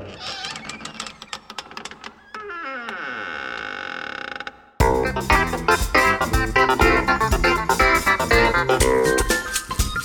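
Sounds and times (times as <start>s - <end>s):
door creaking open: 0.0s - 4.8s
loud busy music: 4.8s - 10.0s.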